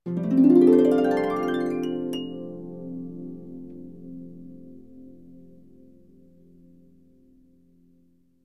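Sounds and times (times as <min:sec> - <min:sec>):
harp: 0:00.0 - 0:06.8.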